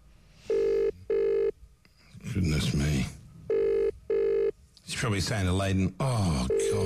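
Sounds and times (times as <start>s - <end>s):
electronic ringback tones of an outgoing phone call: 0.5s - 1.5s, 3.5s - 4.5s, 6.5s - 6.8s
speech: 2.3s - 3.2s, 5.0s - 6.8s.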